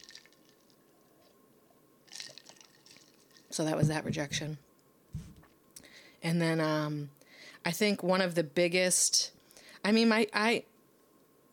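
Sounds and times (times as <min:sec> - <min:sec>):
person sipping a drink: 0:02.1 - 0:03.5
speech: 0:03.6 - 0:04.6, 0:06.2 - 0:10.7.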